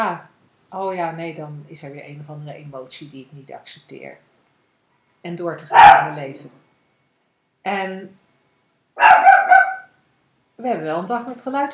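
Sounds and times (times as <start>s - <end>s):
speech: 0.0s - 4.3s, 5.2s - 6.6s, 7.6s - 8.2s, 10.6s - 11.7s
dog barking: 5.7s - 6.2s, 9.0s - 10.0s.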